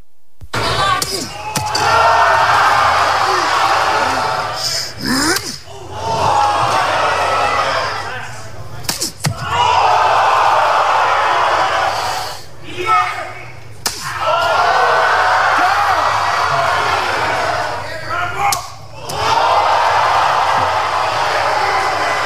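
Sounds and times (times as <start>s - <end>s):
loud continuous arena crowd roar: 0.6s - 22.2s
sharp cracking open-hand slaps in a slap-fighting competition: 8.8s - 9.4s, 13.8s - 14.1s.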